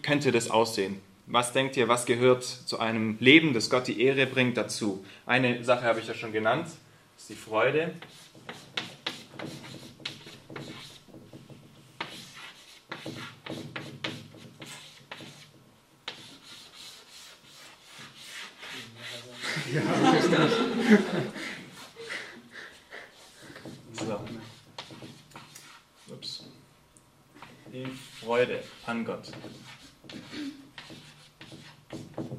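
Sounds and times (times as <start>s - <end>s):
speech: 0.1s - 8.6s, 9.4s - 9.7s
chalk writing on a blackboard: 8.0s - 19.7s, 21.7s - 22.0s, 22.6s - 26.6s, 27.4s - 32.3s
laughter: 19.4s - 22.5s.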